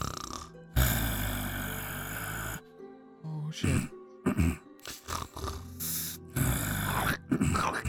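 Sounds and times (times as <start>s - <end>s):
voice imitating loud drawn-out snoring: 0.0s - 2.6s, 3.8s - 7.8s
speech: 3.5s - 4.6s.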